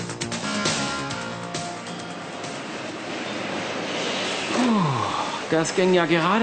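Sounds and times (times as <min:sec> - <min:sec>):
assembly line machine whine: 0:00.2 - 0:06.4
car factory assembly line machinery fitting engine and chassis into car body: 0:01.6 - 0:06.4
speech: 0:05.5 - 0:06.4.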